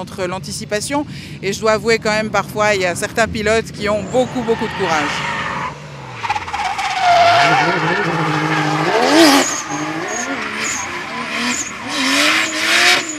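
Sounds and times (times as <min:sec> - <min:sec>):
speech: 0:00.0 - 0:05.4
drifting car engine revving: 0:03.1 - 0:13.1
drifting car tyres squealing at a drift competition: 0:04.0 - 0:13.1.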